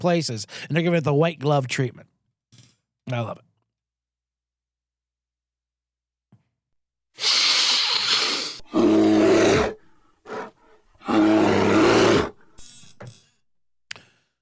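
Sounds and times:
speech: 0.0 - 2.1, 3.1 - 3.5
bear roaring in loud raspy bursts: 8.0 - 12.9
bear grunts and huffs: 9.3 - 13.4.

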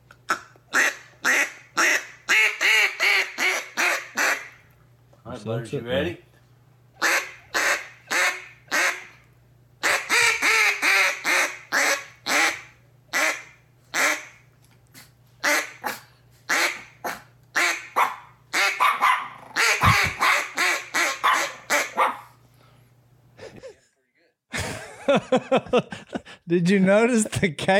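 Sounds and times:
duck call blown by a person: 0.3 - 4.6, 7.0 - 9.2, 9.8 - 14.4, 15.4 - 22.2
speech: 5.4 - 6.3, 26.5 - 27.7
dog barking: 17.9 - 22.4
laughter: 23.4 - 26.4.

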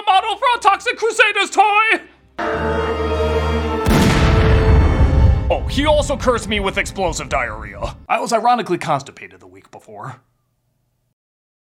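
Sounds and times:
speech: 0.3 - 2.8, 5.6 - 10.3
gunshot: 3.8 - 6.3.

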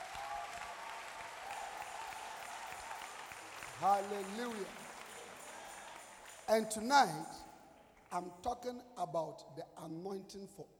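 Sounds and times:
congregation clapping in praise during a church service: 0.0 - 8.5
speech: 3.8 - 4.8, 6.5 - 7.5, 8.1 - 10.7.

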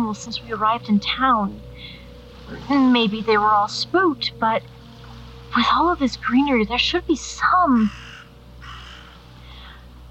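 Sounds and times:
low steady hum: 0.0 - 10.0
speech: 0.1 - 4.8, 5.5 - 8.0
raven or crow cawing: 7.4 - 9.9.

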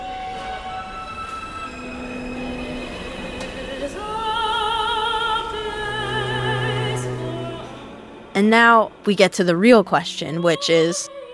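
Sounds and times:
rumble of subway rail noise: 0.0 - 10.4
subway train motor whining: 0.0 - 10.4
speech: 8.4 - 11.2.

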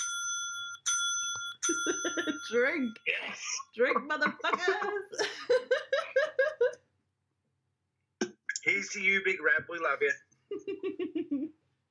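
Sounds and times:
bright metallic bell ringing: 0.0 - 3.1
speech: 1.7 - 5.8, 8.8 - 11.6
laughter: 3.8 - 6.8, 10.5 - 11.6.

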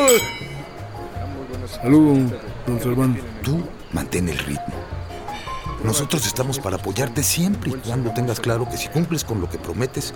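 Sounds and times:
glasses clinking in a toast at a dinner: 0.0 - 0.9
speech: 0.1 - 0.5, 1.7 - 5.0, 5.8 - 10.1.

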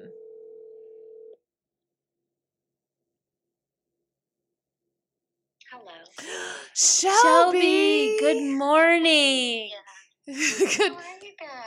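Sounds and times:
electronic phone tone of an outgoing call ringing out: 0.0 - 1.4
speech: 5.7 - 11.6
laughter: 10.3 - 11.1.

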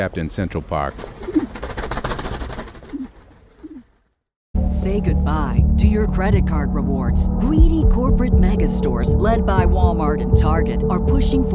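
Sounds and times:
speech: 0.0 - 1.5, 4.8 - 11.5
busy noisy outdoor noise: 0.0 - 4.2
pigeons cooing: 0.9 - 4.0.

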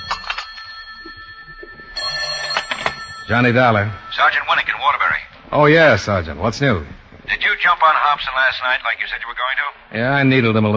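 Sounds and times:
old-fashioned telephone bell ringing: 0.0 - 5.4
speech: 3.3 - 7.0, 7.7 - 10.7.

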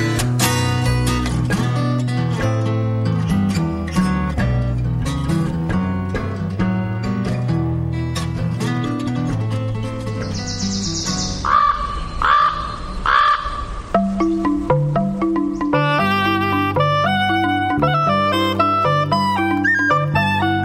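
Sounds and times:
bright plucked melody: 0.0 - 11.4, 13.9 - 20.6
soft musical backdrop: 0.0 - 11.5, 13.9 - 20.6
crows cawing: 11.3 - 13.8.

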